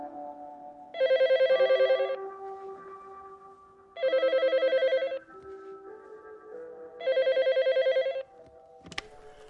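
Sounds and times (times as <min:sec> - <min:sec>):
landline telephone ringing with a trilling bell at home: 0:01.0 - 0:02.4, 0:04.0 - 0:05.4, 0:07.0 - 0:08.4.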